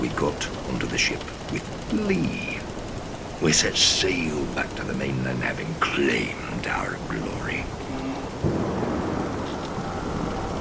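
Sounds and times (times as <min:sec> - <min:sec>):
speech: 0:00.0 - 0:02.6, 0:03.4 - 0:07.8
heavy rain at night at sea aboard a ship: 0:00.0 - 0:10.5
deep rolling thunder at sea: 0:08.3 - 0:10.5.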